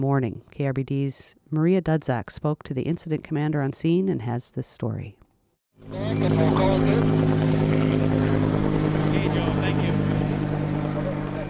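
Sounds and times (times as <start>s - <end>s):
speech: 0.0s - 5.2s, 5.8s - 8.2s
helicopter airlifting water to a wildfire-burnt hillside in Ketchikan Alaska: 5.8s - 11.4s.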